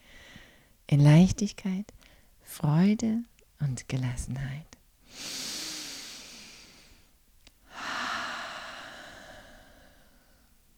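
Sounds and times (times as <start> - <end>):
speech: 0.9 - 5.4
slow breathing in and out during a guided meditation: 5.0 - 10.6.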